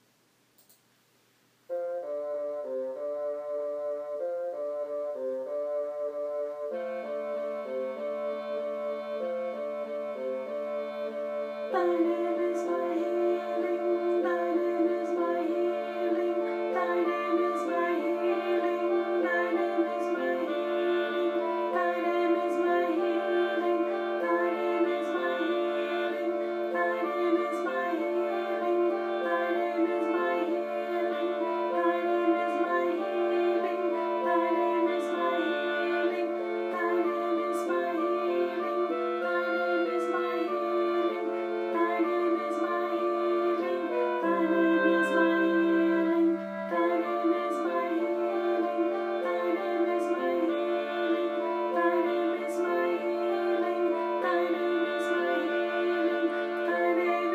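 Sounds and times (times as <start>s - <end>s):
alto voice singing: 1.7s - 57.3s.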